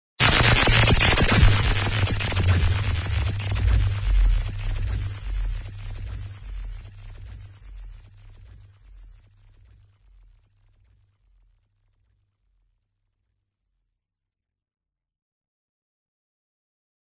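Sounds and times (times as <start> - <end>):
power laser sound effect: 0.2 - 9.0.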